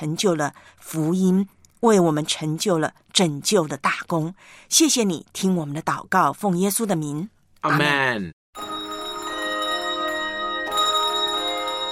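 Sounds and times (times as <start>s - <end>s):
speech: 0.0s - 8.7s
bells ringing: 8.6s - 11.8s.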